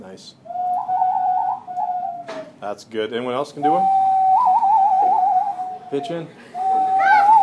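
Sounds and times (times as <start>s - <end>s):
speech: 0.0s - 0.5s, 2.6s - 4.0s, 5.9s - 6.5s
loon calling with a held whistled tone and wavering pulses: 0.4s - 2.4s, 3.6s - 7.4s.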